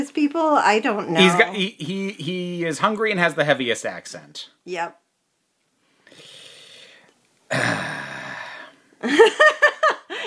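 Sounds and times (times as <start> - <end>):
speech: 0.0 - 5.0, 7.5 - 8.0, 9.0 - 10.2
yawn: 6.1 - 8.7.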